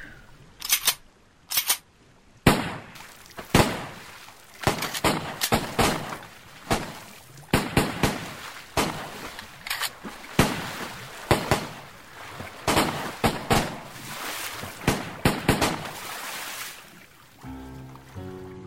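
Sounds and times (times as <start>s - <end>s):
gunshots fired at sharks around a sinking boat: 2.4s - 11.9s, 12.6s - 14.0s, 14.7s - 16.1s.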